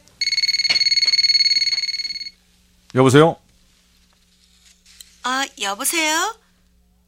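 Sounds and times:
phone ringing with trilling electronic tone for incoming call: 0:00.2 - 0:02.4
speech: 0:02.9 - 0:03.4, 0:05.5 - 0:06.4.

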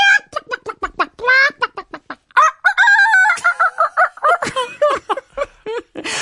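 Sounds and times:
flock of chickens clucking and squawking in a yard: 0:00.0 - 0:04.4
laughter: 0:00.4 - 0:06.0.

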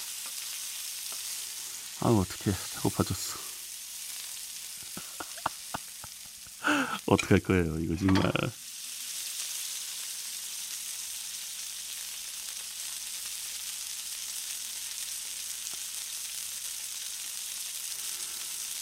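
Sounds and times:
meat sizzling in a hot pan while being flipped: 0:00.0 - 0:18.8
speech: 0:02.0 - 0:03.5, 0:07.1 - 0:08.6
laughter: 0:04.8 - 0:07.3.

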